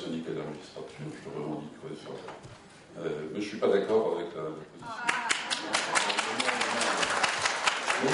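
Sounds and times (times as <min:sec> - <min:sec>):
speech: 0:00.1 - 0:06.5, 0:08.0 - 0:08.1
audience clapping: 0:05.0 - 0:08.1.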